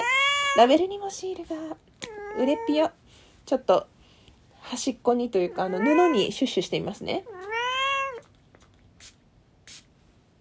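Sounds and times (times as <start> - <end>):
cat meowing: 0.0 - 0.7, 2.0 - 2.9, 5.5 - 6.4, 7.2 - 8.3
speech: 0.6 - 3.9, 4.6 - 7.4.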